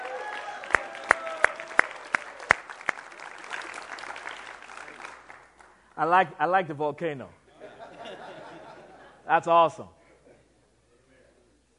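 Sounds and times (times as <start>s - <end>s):
audience applause: 0.0s - 6.0s
speech: 6.0s - 7.4s, 9.3s - 10.0s
laughter: 7.5s - 9.3s.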